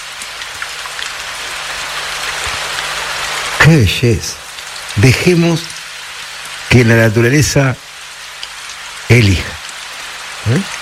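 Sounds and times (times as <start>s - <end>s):
steady rain: 0.0s - 10.8s
speech: 3.7s - 4.4s, 5.0s - 5.7s, 6.8s - 7.8s, 9.1s - 9.6s, 10.4s - 10.7s.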